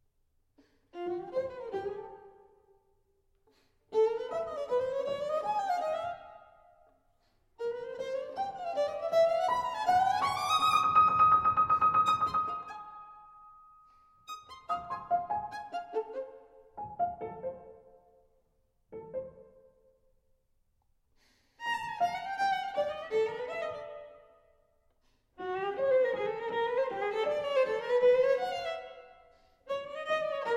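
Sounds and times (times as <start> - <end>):
sonata for violin and piano: 0.9 - 2.5, 3.9 - 6.6, 7.6 - 13.4, 14.2 - 18.2, 18.9 - 19.7, 21.6 - 24.5, 25.4 - 30.5.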